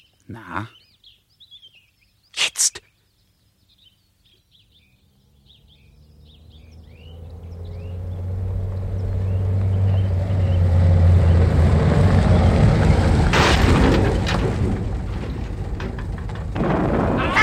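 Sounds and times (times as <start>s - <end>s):
speech: 0.3s - 0.8s
deep engine rumble of a new car: 5.2s - 17.4s
new car crashing into a ravine: 7.0s - 17.4s
rattling: 8.0s - 17.4s.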